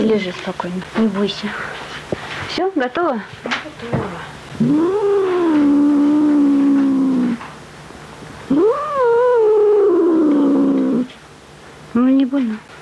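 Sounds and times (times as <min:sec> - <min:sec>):
speech: 0:00.0 - 0:05.3, 0:12.0 - 0:12.7
cat yowling while held down after an operation: 0:04.6 - 0:07.4, 0:08.5 - 0:11.1.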